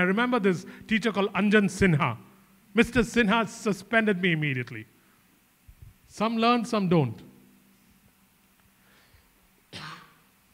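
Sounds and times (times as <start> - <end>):
speech: 0.0 - 4.9, 6.1 - 7.3
throat clearing: 9.7 - 10.2.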